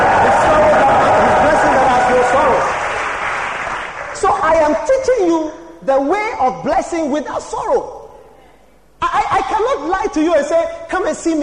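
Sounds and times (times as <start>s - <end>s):
crowd shouting: 0.0s - 2.9s
crowd clapping: 0.0s - 4.4s
speech: 6.0s - 8.0s, 9.2s - 11.4s.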